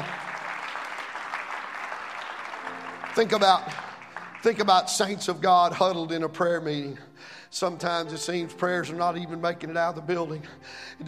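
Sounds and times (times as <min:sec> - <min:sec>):
church congregation clapping along during worship: 0:00.0 - 0:06.2
speech: 0:03.2 - 0:03.8, 0:04.4 - 0:11.0.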